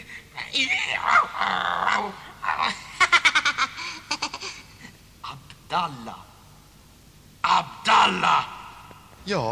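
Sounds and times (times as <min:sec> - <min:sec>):
speech: 0:00.5 - 0:02.8, 0:05.7 - 0:06.3, 0:08.0 - 0:08.6, 0:09.2 - 0:09.5
boy laughing in rapid pulsing bursts: 0:02.0 - 0:04.8.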